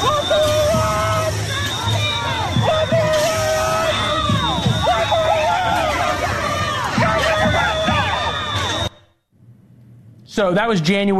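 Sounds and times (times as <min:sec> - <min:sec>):
individual shouts from protest crowd: 0:00.0 - 0:08.7
large protest crowd yelling and chanting at a fence: 0:00.0 - 0:09.2
speech: 0:10.4 - 0:11.1.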